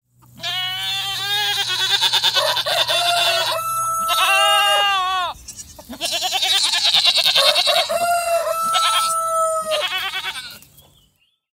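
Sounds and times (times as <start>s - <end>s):
goat: 0.2s - 11.1s
rooster: 1.9s - 5.2s, 7.1s - 10.6s.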